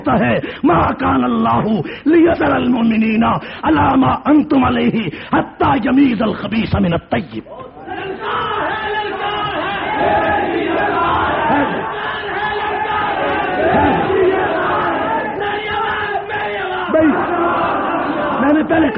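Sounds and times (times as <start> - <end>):
speech: 0.0 - 8.1
large crowd chanting religious slogans: 7.7 - 18.9.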